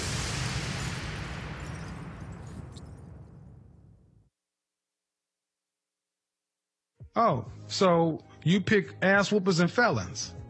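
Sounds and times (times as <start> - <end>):
bomb explosion sound effect with deep low-end rumble: 0.0 - 4.3
speech: 7.2 - 10.4.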